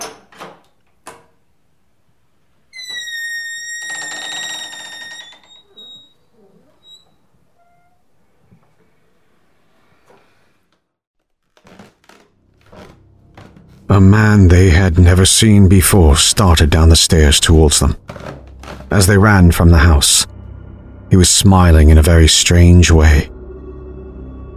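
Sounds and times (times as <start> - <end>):
door latching and creaking open: 0.0 - 1.3, 2.7 - 10.8, 11.4 - 15.2, 15.8 - 20.2
speech: 14.0 - 18.3, 18.9 - 20.3, 21.1 - 23.3.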